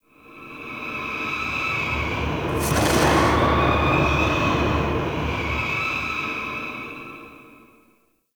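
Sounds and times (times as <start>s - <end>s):
ghost horse ambience: 1.4s - 6.7s.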